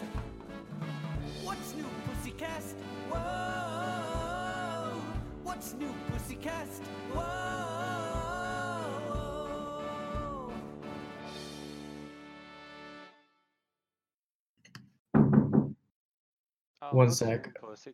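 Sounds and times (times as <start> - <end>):
music: 0.0 - 13.6
speech: 5.6 - 7.6, 16.9 - 17.9
knocking on a door: 15.1 - 15.8.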